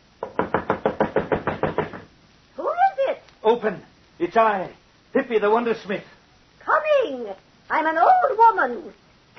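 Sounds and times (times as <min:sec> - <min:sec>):
rapid loud knocking on a fortune teller's wooden door: 0:00.2 - 0:02.1
speech: 0:03.5 - 0:09.0.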